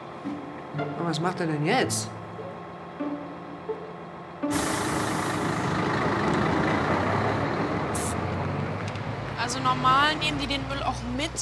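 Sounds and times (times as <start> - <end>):
garbage truck idling with low harmonic rumble: 0.0 - 10.7
speech: 0.2 - 2.2, 9.5 - 11.4
loud hiss of air brakes or hydraulics: 4.4 - 5.9.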